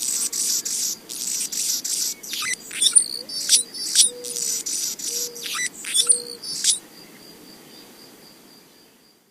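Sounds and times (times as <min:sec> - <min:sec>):
Anna's Hummingbird song of rapid scratchy buzzes and squeaky slurred notes: 0:00.0 - 0:06.9.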